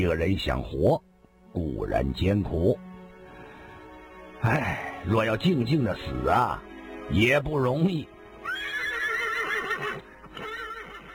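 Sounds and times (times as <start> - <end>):
speech: 0.0 - 2.9, 4.4 - 8.1
horse hitched to a carriage neighing: 8.4 - 11.1.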